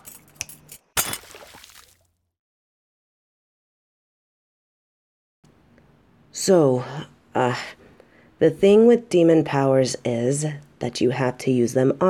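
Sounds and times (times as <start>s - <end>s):
shards of broken glass crashing into a trash can: 1.0s - 1.8s
water splashing: 1.0s - 2.1s
speech: 6.4s - 7.8s, 8.4s - 12.0s.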